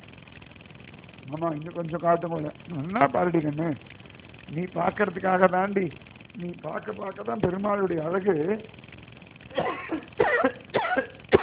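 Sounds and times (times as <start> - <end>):
speech: 1.3 - 8.8, 9.6 - 11.2
person coughing harshly: 9.6 - 11.4.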